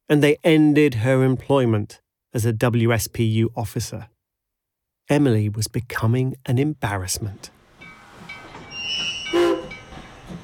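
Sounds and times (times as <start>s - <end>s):
speech: 0.1s - 4.1s, 5.1s - 7.6s
train whine at a railway station in Aberdeen Scotland: 7.6s - 10.4s.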